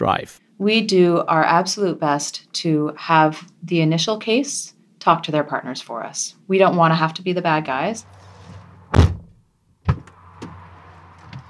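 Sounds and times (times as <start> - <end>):
speech: 0.0 - 8.2
heavy car doors thudding shut: 8.9 - 10.6.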